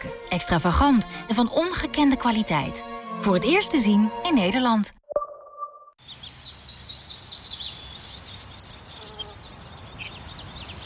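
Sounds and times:
speech: 0.0 - 5.0
birds whistling: 6.0 - 10.8.

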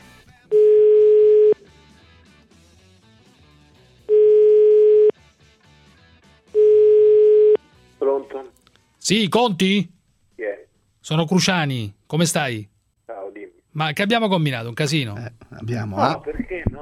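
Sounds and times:
telephone tone beeps while placing a call: 0.5 - 1.6, 4.1 - 5.1, 6.6 - 7.6
speech: 9.1 - 10.0, 11.0 - 12.7, 13.8 - 16.6.

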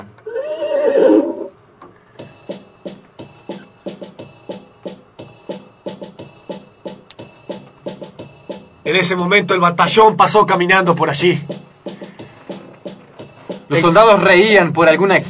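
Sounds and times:
horse whinnying: 0.2 - 1.6
speech: 8.9 - 11.6, 13.8 - 15.2.

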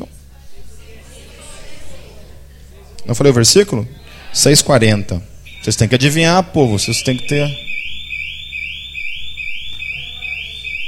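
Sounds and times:
speech: 3.0 - 7.7
electronic alarm with high-pitched rising sweeps inside a church: 5.5 - 10.8.

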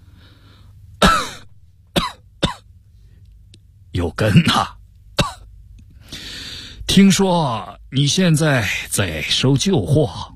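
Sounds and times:
man coughing violently: 1.0 - 2.7, 4.2 - 5.5
speech: 4.0 - 4.8, 7.0 - 10.3.

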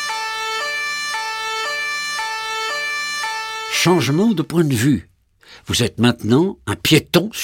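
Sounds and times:
police siren heard from inside the police car: 0.0 - 4.5
speech: 3.7 - 7.4.

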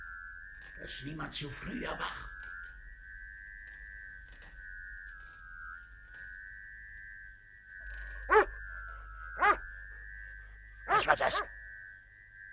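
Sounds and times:
speech: 0.8 - 2.4
dog barking at night during a storm: 8.3 - 8.6, 9.4 - 9.6, 10.9 - 11.5.

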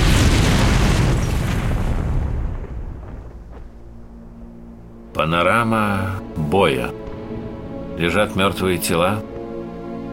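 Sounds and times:
grenade explosion after being thrown through a window: 0.0 - 3.6
speech: 5.2 - 7.0, 8.0 - 9.3.

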